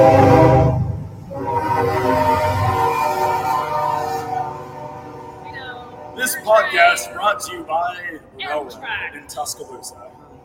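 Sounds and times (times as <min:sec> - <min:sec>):
train horn blaring: 0:00.0 - 0:07.7
passing train rumble: 0:00.0 - 0:10.4
speech: 0:07.4 - 0:10.0.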